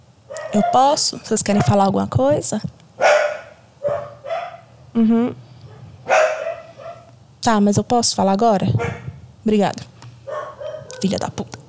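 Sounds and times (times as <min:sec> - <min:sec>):
dog barking: 0:00.3 - 0:01.8, 0:03.0 - 0:04.7, 0:05.7 - 0:07.1, 0:08.7 - 0:09.2, 0:10.3 - 0:11.2
speech: 0:00.5 - 0:02.8, 0:05.0 - 0:05.4, 0:07.4 - 0:09.9, 0:11.0 - 0:11.6.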